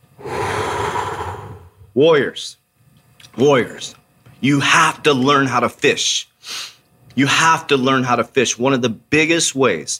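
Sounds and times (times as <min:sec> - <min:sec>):
long even noisy deep inhalation: 0:00.1 - 0:01.9
short louder voiced exhale like a sigh: 0:00.1 - 0:01.9
speech: 0:02.0 - 0:02.6, 0:03.4 - 0:09.9.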